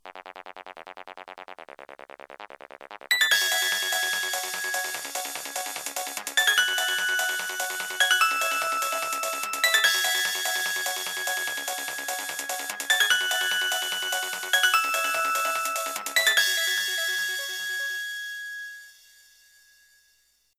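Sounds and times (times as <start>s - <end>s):
Nokia 1208 mobile phone ringtone: 3.1s - 19.5s.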